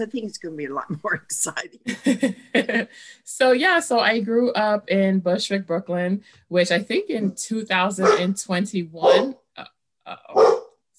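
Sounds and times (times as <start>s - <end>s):
speech: 0.0s - 10.6s
male pet dog barking: 8.0s - 8.3s, 9.0s - 9.3s, 10.3s - 10.7s.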